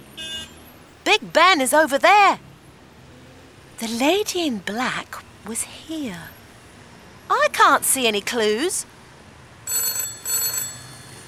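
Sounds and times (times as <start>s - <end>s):
speech: 1.2s - 2.5s, 3.8s - 6.4s, 7.3s - 8.9s
telephone ringing in a phone box: 9.7s - 11.2s.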